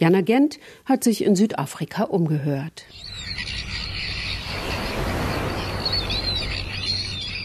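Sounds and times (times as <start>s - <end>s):
speech: 0.0s - 3.5s
seagulls calling above the surf: 2.9s - 7.4s
ocean waves washing onto a beach: 3.0s - 7.4s.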